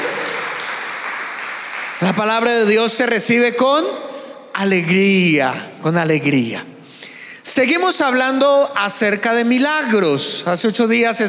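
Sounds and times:
audience applauding: 0:00.0 - 0:02.4
speech: 0:02.0 - 0:06.7, 0:07.4 - 0:11.2.

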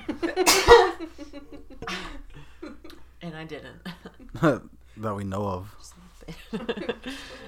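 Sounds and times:
laughter: 0:00.0 - 0:03.0, 0:06.3 - 0:07.4
speech: 0:00.2 - 0:02.1, 0:03.4 - 0:07.4
sneeze: 0:00.4 - 0:01.0.

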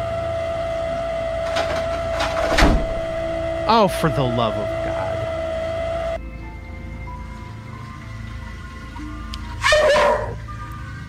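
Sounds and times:
steady hum and hiss: 0:00.0 - 0:11.0
speech: 0:03.7 - 0:04.8
dog barking: 0:09.6 - 0:10.4.

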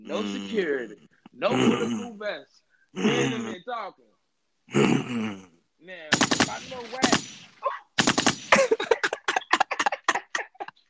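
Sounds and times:
speech: 0:00.1 - 0:04.1, 0:04.7 - 0:07.8
voice imitating machine-gun fire: 0:03.0 - 0:03.6, 0:06.1 - 0:09.4
laughter: 0:08.5 - 0:10.8.

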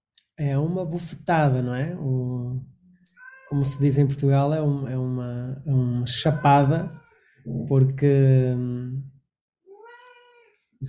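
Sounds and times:
speech: 0:00.4 - 0:02.7, 0:03.5 - 0:09.1
drawn-out kitten meow: 0:03.2 - 0:03.9, 0:06.1 - 0:07.0, 0:09.7 - 0:10.5.

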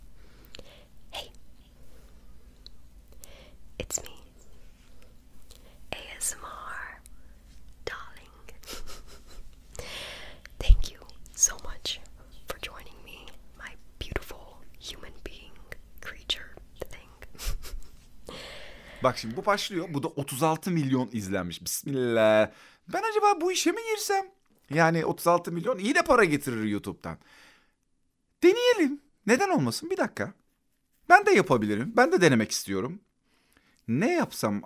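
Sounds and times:
faint low hum: 0:00.0 - 0:34.6
soft ASMR whispering: 0:00.5 - 0:02.2, 0:03.1 - 0:08.6, 0:10.5 - 0:17.3, 0:18.5 - 0:20.0
speech: 0:19.0 - 0:27.5, 0:28.4 - 0:30.4, 0:31.1 - 0:33.1, 0:33.9 - 0:34.6.

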